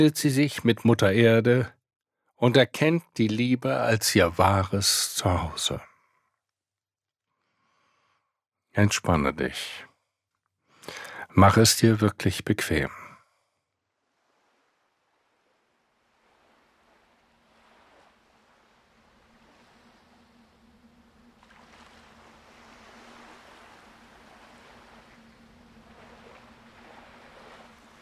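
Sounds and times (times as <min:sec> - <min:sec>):
speech: 0:00.0 - 0:01.8, 0:02.4 - 0:05.9, 0:08.8 - 0:09.9, 0:10.9 - 0:13.0
ocean waves washing onto a beach: 0:14.0 - 0:27.9
low steady hum: 0:16.9 - 0:27.9.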